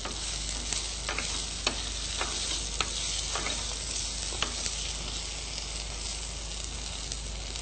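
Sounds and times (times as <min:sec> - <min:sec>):
stirring scraping clicks: 0:00.0 - 0:04.7
potatoes sizzling and frying in a kadai over a full gas flame: 0:00.0 - 0:07.5.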